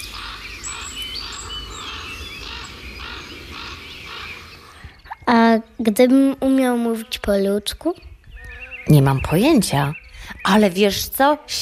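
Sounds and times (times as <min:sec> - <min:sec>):
raven croaking: 0:00.0 - 0:05.2
speech: 0:05.6 - 0:08.1, 0:08.8 - 0:11.6.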